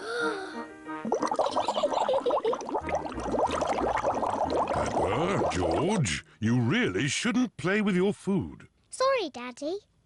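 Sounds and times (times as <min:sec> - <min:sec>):
bubbles blown into orange juice through a straw: 0:01.0 - 0:06.0
speech: 0:05.5 - 0:10.0.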